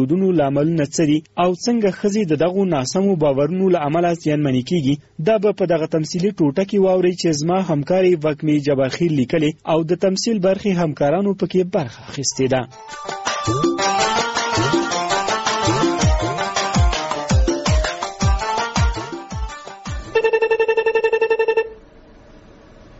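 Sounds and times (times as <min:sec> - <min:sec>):
speech: 0:00.0 - 0:14.1
telephone ringing with an electronic tone: 0:12.4 - 0:16.4, 0:20.0 - 0:21.7
music with sharp percussive hits: 0:12.7 - 0:20.2.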